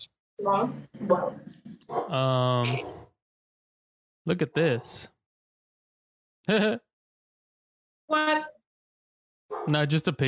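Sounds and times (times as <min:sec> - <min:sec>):
speech: 0:00.0 - 0:03.0, 0:04.2 - 0:05.1, 0:06.5 - 0:06.9, 0:08.1 - 0:08.5, 0:09.5 - 0:10.2
dog barking: 0:01.9 - 0:03.1, 0:09.5 - 0:09.8
dog yowling bark: 0:09.5 - 0:09.7.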